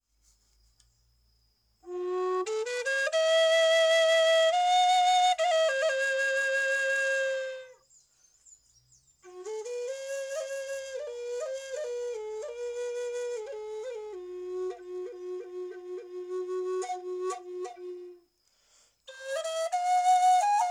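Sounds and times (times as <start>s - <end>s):
sculptural serpent flute in F: 1.8s - 7.9s, 9.2s - 18.3s, 19.1s - 20.7s.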